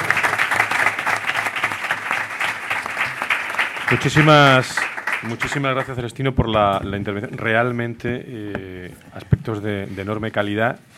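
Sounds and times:
audience applause closing a conference talk: 0.0s - 6.0s
speech: 3.9s - 10.9s.

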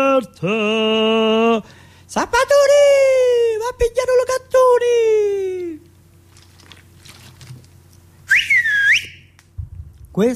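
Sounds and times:
quiet low hum: 0.0s - 10.3s
speech: 0.2s - 3.1s, 10.2s - 10.3s
man whistling to call his daughter: 8.2s - 9.4s.

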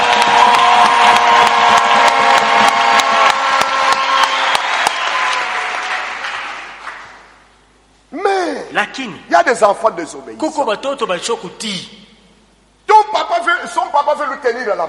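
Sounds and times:
crowd applauding and cheering: 0.0s - 7.5s
speech: 9.0s - 12.0s, 13.1s - 14.8s.

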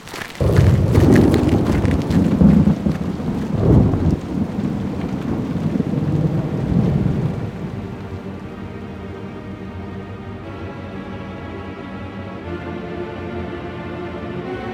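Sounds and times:
steady hiss of rain: 0.0s - 10.6s
deep rolling thunder: 0.4s - 10.6s.

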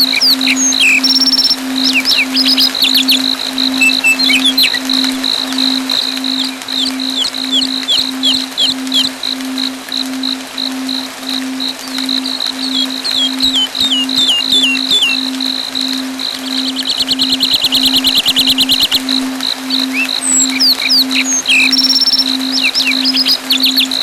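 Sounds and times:
bird chirps with quick high sweeping twitters and short trills: 0.0s - 24.0s
steady pulsing beep: 0.0s - 24.0s.

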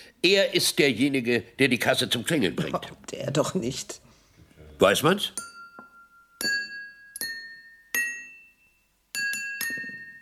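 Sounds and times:
speech: 0.1s - 4.0s, 4.8s - 5.5s
glasses clinking: 5.4s - 10.2s.

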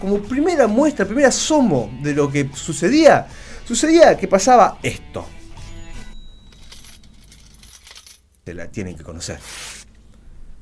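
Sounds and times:
speech: 0.0s - 5.4s, 8.5s - 9.8s
cash register: 6.0s - 8.2s
coins clinking: 6.2s - 8.5s.

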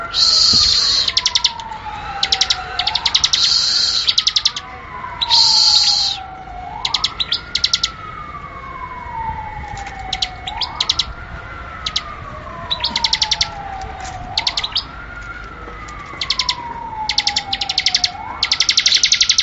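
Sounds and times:
Bar-winged Prinia giving quick high chips: 0.0s - 8.0s, 12.7s - 19.4s
siren-like tone: 0.0s - 19.4s.

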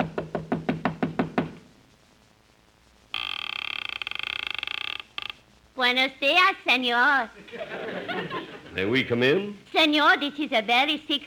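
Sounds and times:
knocking on a door: 0.0s - 1.6s
speech: 5.8s - 11.2s
laughter: 7.4s - 9.0s.

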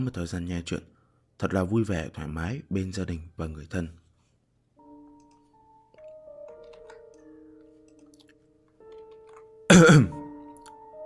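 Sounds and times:
speech: 0.0s - 4.0s, 9.8s - 10.2s
quiet sustained tonal background: 4.6s - 11.0s
dry cough: 9.7s - 10.2s.

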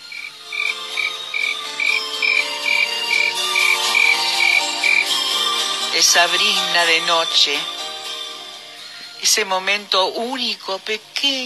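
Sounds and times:
cricket chirping at night: 0.0s - 5.2s
dense continuous chorus of night creatures: 0.0s - 7.0s
speech: 6.0s - 7.8s, 9.2s - 11.4s.

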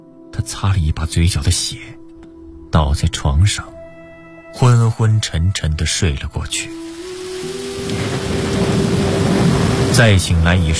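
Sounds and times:
speech: 0.4s - 2.0s, 2.7s - 3.8s, 4.5s - 8.3s, 10.0s - 10.7s
heavy midnight rain pouring in through an open window: 6.7s - 10.7s
rumbling thunder: 7.0s - 10.7s.

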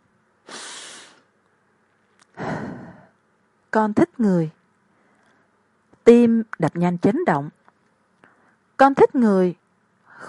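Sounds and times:
deep breath: 0.5s - 1.3s, 2.3s - 3.2s, 8.2s - 8.6s
speech: 3.7s - 4.6s, 6.1s - 7.6s, 8.8s - 9.6s.

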